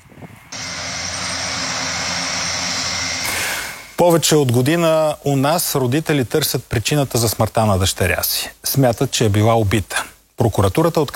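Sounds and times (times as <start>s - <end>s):
firefighting aircraft propeller engine flying overhead: 0.0s - 4.0s
speech: 4.0s - 11.1s.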